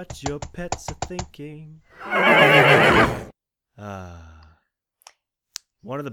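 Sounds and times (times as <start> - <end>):
speech: 0.0 - 4.4, 5.8 - 6.1
horse neighing: 2.0 - 3.3.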